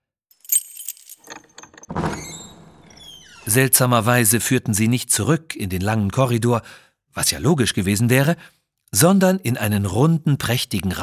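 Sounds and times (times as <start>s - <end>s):
small gates swinging open with a rushing sound: 1.0s - 3.6s
key jingling and clicking into a lock: 1.2s - 1.9s
speech: 3.4s - 11.0s.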